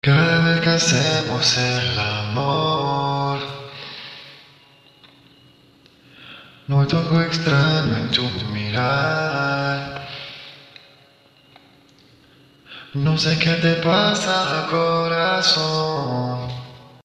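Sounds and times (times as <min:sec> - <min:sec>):
a cappella rnb vocals in C sharp: 0:00.0 - 0:04.5, 0:06.4 - 0:11.0, 0:12.7 - 0:17.0.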